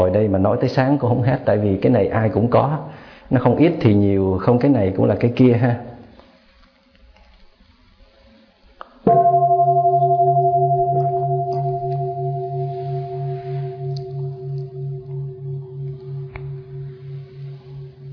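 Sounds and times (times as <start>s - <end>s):
speech: 0.0s - 5.9s
large temple bell struck and ringing: 9.1s - 18.1s.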